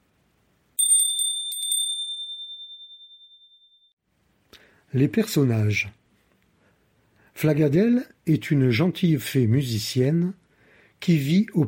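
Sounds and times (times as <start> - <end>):
bright high bell chime signalling a page turn: 0.8 - 4.0
speech: 4.9 - 6.0, 7.4 - 10.4, 11.0 - 11.6.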